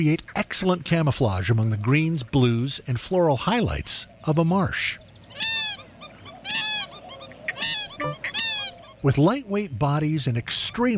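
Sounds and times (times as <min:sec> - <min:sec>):
speech: 0:00.0 - 0:05.5, 0:09.0 - 0:10.9
purple gallinule honking calls in a marsh: 0:05.3 - 0:09.1.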